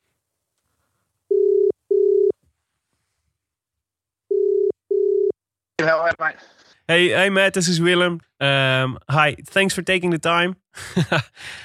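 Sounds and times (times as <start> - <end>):
telephone ringback tone through the line after dialing: 1.3 - 2.4, 4.3 - 5.4
speech: 5.8 - 11.6
laughter: 10.8 - 11.4.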